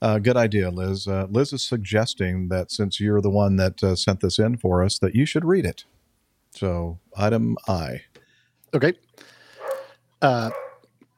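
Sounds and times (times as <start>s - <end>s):
speech: 0.0s - 6.0s, 6.6s - 8.1s, 8.7s - 9.3s, 10.2s - 10.6s
dog barking: 9.6s - 10.9s.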